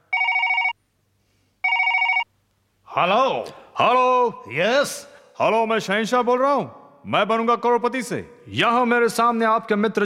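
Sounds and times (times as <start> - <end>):
telephone ringing on an outgoing call to Singapore: 0.0 - 0.8, 1.6 - 2.3
speech: 3.0 - 10.0.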